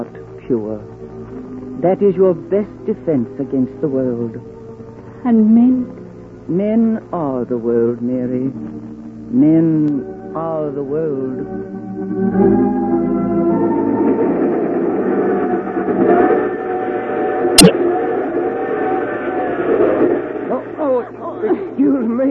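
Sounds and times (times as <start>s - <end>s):
speech: 0.0s - 1.0s, 1.8s - 4.5s, 5.2s - 12.9s
moving train rattling: 13.5s - 22.0s.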